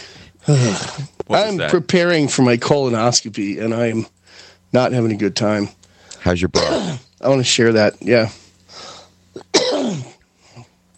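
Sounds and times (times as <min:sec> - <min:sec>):
speech: 0:00.5 - 0:08.9
single harsh forceful cough from a man: 0:06.5 - 0:07.2, 0:09.4 - 0:10.2.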